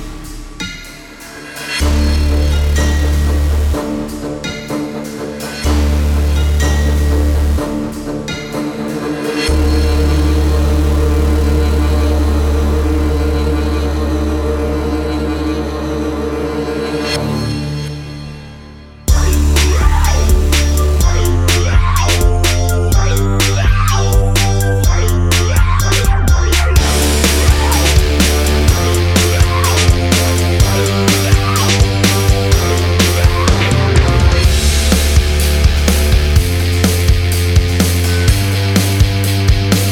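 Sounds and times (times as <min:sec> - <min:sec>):
epic strings playing: 0:01.8 - 0:21.7, 0:22.4 - 0:39.9
powerful rock guitar: 0:19.1 - 0:39.9.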